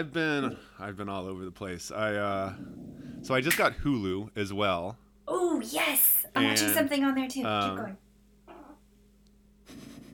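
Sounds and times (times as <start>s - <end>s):
speech: 0.0s - 5.0s, 5.6s - 8.0s
low hum: 0.0s - 10.1s
female dog growling: 2.5s - 3.4s.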